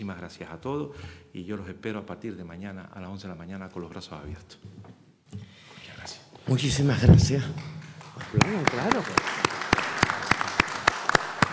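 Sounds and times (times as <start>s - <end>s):
speech: 0.1s - 5.4s, 6.0s - 9.4s
applause at a press conference: 7.6s - 11.5s.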